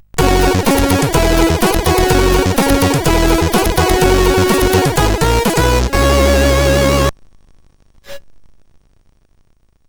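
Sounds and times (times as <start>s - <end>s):
chiptune loader music on SID CSG8580R5 chip: 0.2s - 7.1s.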